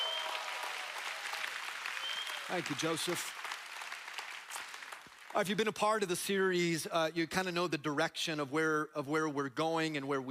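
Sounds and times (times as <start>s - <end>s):
audience clapping and applauding: 0.0s - 6.1s
speech: 2.5s - 3.4s, 5.3s - 10.2s.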